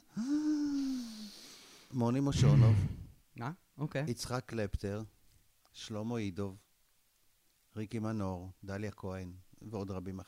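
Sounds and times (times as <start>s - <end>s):
single long deep breath with a sighing tone: 0.0s - 3.2s
speech: 1.9s - 5.2s, 5.8s - 6.6s, 7.8s - 10.2s.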